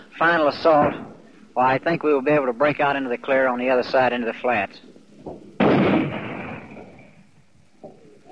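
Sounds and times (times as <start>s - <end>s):
speech: 0.2s - 5.5s
faint thump: 5.2s - 7.2s
75 mm tank gun firing: 5.5s - 7.3s.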